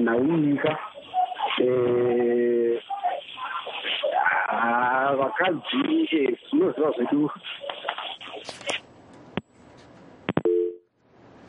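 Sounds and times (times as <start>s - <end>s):
speech: 0.0s - 0.9s, 1.6s - 2.1s, 5.3s - 7.7s
talk on a phone-in line: 0.0s - 8.8s
dual-pitched telephone busy tone: 10.4s - 10.8s.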